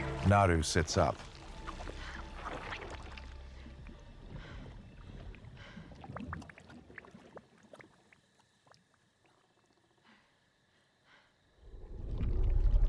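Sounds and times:
speech: 0.3 - 1.3
bubbles popping in thick mud: 1.2 - 9.8, 11.8 - 12.8
deep loud rumbling surge: 11.6 - 12.8.

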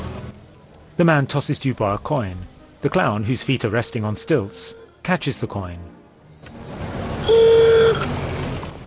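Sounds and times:
street noise: 0.0 - 8.8
speech: 1.0 - 6.0
car engine rumbling as it pulls away: 6.4 - 8.8
single sustained car horn honk: 7.2 - 8.1.

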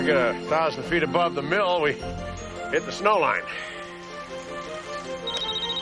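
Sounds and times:
speech: 0.1 - 3.7
cell phone ringtone in the woods above a mill near the snow line: 5.1 - 5.8.

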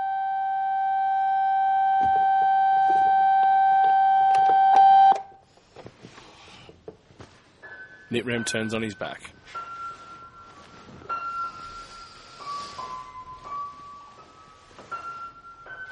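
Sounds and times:
alarm clock ringing with an electronic tone: 0.0 - 5.4
quiet rustling: 5.5 - 7.9, 8.7 - 15.9
speech: 8.1 - 9.6.

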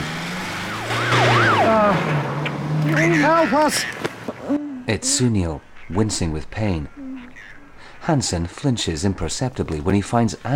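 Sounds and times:
ambulance siren wailing as the vehicle pulls away from a roadside crash scene: 0.4 - 2.3
speech: 3.4 - 7.0, 8.0 - 10.5.

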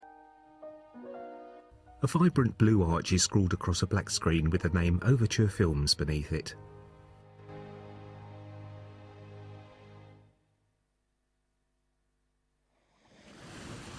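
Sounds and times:
speech: 2.0 - 6.8
water draining back hiss on a sandy beach: 12.8 - 13.9
wave washing up on a sandy beach: 13.1 - 13.9.

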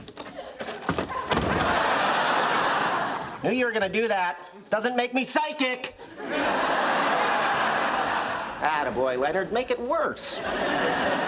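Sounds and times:
laughter: 0.2 - 3.7, 5.9 - 9.2, 10.2 - 11.2
apartment door slamming shut: 0.8 - 1.8
speech: 3.4 - 6.8, 8.6 - 11.2.

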